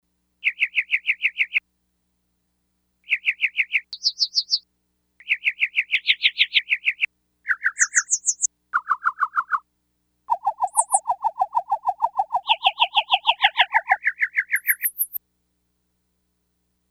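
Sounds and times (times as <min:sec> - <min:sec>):
synthesized bird sounds from a Yamaha DX100 factory patch: 0:00.4 - 0:01.6, 0:03.1 - 0:04.6, 0:05.2 - 0:09.6, 0:10.3 - 0:15.2.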